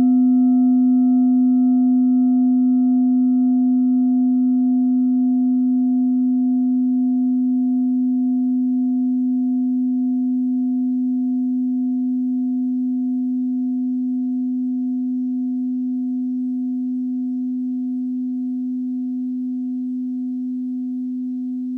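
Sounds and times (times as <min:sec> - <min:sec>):
singing bowl from Ladakh made in a forge: 0:00.0 - 0:21.7.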